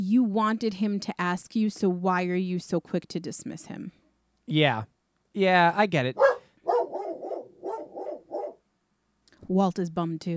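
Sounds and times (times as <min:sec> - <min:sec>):
speech: 0:00.0 - 0:06.3, 0:09.5 - 0:10.3
dog barking: 0:06.1 - 0:08.6.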